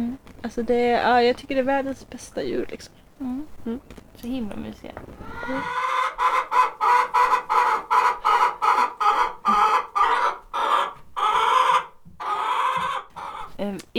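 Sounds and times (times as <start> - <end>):
speech: 0.4 - 6.4, 13.6 - 13.9
flock of chickens clucking: 4.3 - 13.8
rooster crowing: 5.3 - 13.5.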